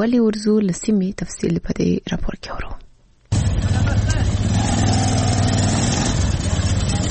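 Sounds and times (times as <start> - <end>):
speech: 0.0 - 2.8
Zaranj motorcycle converted into passenger rickshaw engine running in Kandahar: 3.3 - 7.0.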